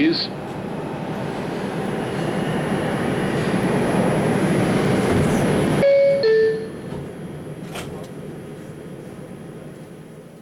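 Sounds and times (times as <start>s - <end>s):
New York subway train roaring and rattling: 0.0s - 10.4s
bright two-note chime over the subway intercom: 5.8s - 6.8s.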